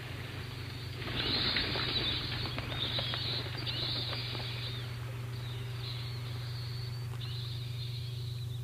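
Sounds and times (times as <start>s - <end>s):
low steady hum: 0.0s - 8.6s
doorbell chime tone of fluttering bat wings: 1.0s - 4.9s.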